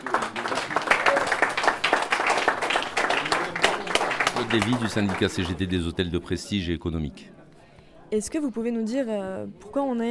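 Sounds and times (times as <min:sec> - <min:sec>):
crowd applauding at a union victory celebration in Gennevilliers: 0:00.0 - 0:06.1
speech: 0:04.5 - 0:07.4, 0:08.1 - 0:10.0.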